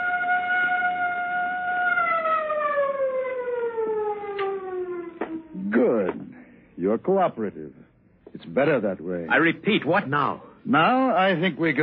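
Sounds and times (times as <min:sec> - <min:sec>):
siren wailing: 0:00.0 - 0:06.1
speech: 0:06.9 - 0:11.8.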